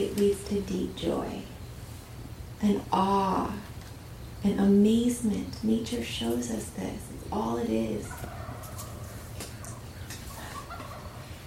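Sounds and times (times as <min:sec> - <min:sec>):
speech: 0:00.0 - 0:01.5, 0:02.6 - 0:03.7, 0:04.4 - 0:08.4
steady low rumble: 0:00.0 - 0:11.4
several turkeys gobbling outdoors: 0:08.0 - 0:11.4.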